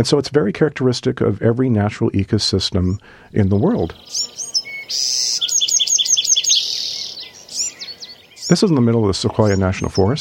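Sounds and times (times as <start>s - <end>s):
speech: 0.0s - 5.3s, 8.5s - 10.2s
forest birds singing: 2.9s - 10.2s
faint steady hum of insects: 3.3s - 10.2s.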